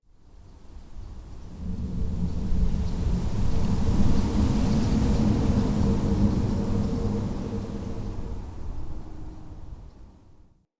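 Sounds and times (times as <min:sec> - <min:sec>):
ocean wind gust in a cave: 0:01.5 - 0:09.5.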